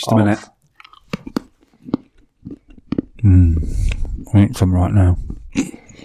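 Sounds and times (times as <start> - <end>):
speech: 0.0 - 0.6, 3.3 - 5.8
moist chewing of chocolate: 0.6 - 6.0
crisp crunching bites of chocolate from a bar: 0.7 - 4.2.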